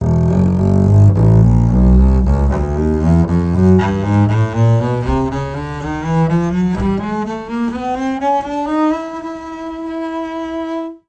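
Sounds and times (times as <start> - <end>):
double bass playing across its range: 0.0 - 10.9.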